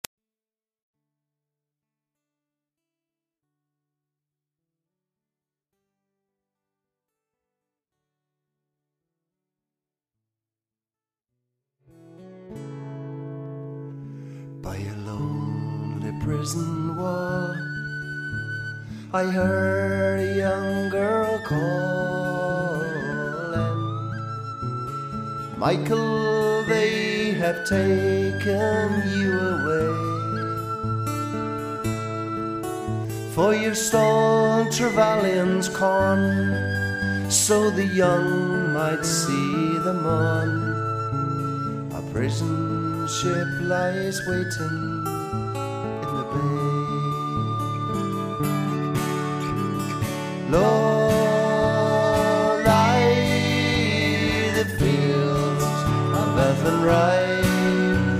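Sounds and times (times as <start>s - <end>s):
Irish folk music: 14.2s - 58.1s.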